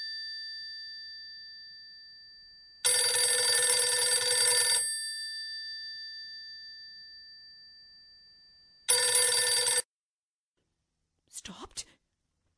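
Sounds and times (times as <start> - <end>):
old-fashioned telephone bell ringing: 2.8 - 7.7, 8.8 - 9.9.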